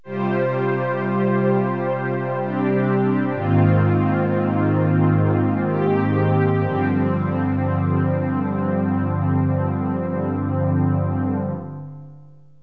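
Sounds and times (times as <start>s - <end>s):
GM sound synth strings: 0.0s - 11.8s.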